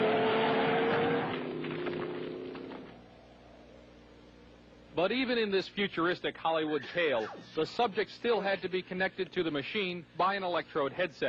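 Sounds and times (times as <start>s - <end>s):
truck engine roaring on a wild ride: 0.0s - 3.0s
speech: 5.0s - 11.2s.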